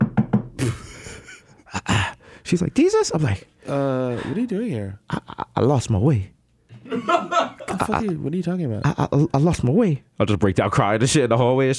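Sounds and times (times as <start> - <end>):
knocking on a door: 0.0 - 0.6
laughter: 0.6 - 2.2, 5.1 - 5.6, 6.7 - 9.3
speech: 2.5 - 11.7.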